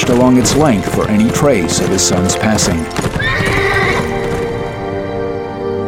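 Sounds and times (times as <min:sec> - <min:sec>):
speech: 0:00.0 - 0:03.6
horse hooves clattering along a wide road: 0:00.0 - 0:05.7
horse neighing: 0:02.9 - 0:05.2.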